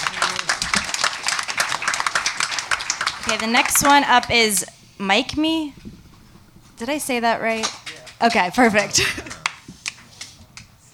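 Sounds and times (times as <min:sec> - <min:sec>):
crowd applause: 0:00.0 - 0:04.1
speech: 0:03.3 - 0:05.9, 0:06.8 - 0:09.3.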